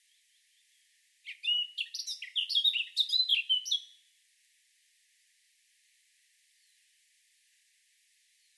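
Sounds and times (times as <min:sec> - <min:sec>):
Eurasian blackcap singing: 0:01.3 - 0:04.0.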